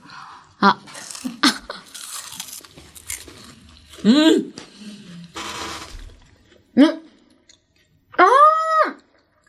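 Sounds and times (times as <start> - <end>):
speech: 0.6 - 0.9, 4.0 - 4.6, 6.8 - 7.0
crunchy chewing of meat: 1.0 - 4.1.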